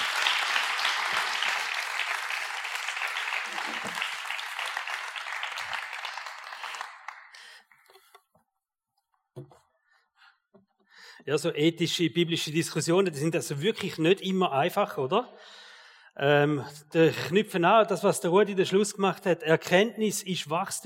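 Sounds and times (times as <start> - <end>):
audience applause: 0.0 - 7.6
speech: 11.3 - 15.6, 16.2 - 20.8.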